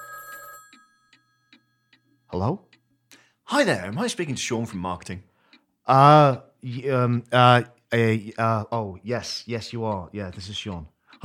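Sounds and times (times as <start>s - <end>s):
telephone ringing with an electronic trill: 0.0s - 2.3s
speech: 2.4s - 2.7s, 3.5s - 5.3s, 5.9s - 11.2s.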